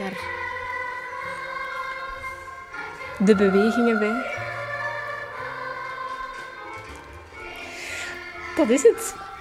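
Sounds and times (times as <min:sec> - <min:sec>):
children's song from a phone's small tinny speaker: 0:00.0 - 0:09.3
speech: 0:03.2 - 0:04.4, 0:08.6 - 0:09.2.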